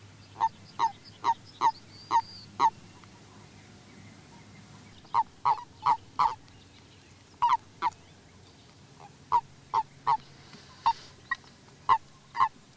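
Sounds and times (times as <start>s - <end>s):
Common toad giving brief throaty croaks: 0.4s - 2.8s, 5.0s - 6.4s, 7.4s - 8.0s, 9.0s - 10.2s.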